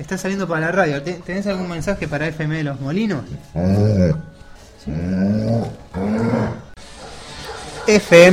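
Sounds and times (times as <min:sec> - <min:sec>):
speech: 0:00.0 - 0:06.6, 0:07.9 - 0:08.3
dog growling: 0:03.4 - 0:07.9.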